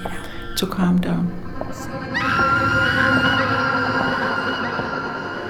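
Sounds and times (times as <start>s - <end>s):
speech: 0.0s - 2.4s
several voices screaming and wailing together: 2.0s - 5.3s.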